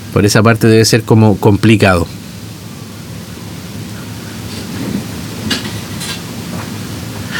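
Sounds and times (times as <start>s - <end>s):
dense wash of rain-like noise: 0.0s - 7.3s
speech: 0.2s - 2.2s.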